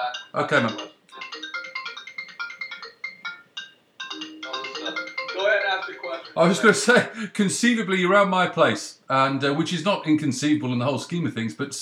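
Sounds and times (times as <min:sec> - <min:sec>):
phone ringtone with quick bright electronic melody: 0:00.0 - 0:07.0
speech: 0:00.4 - 0:00.9, 0:06.4 - 0:11.7
laughter: 0:06.3 - 0:07.3.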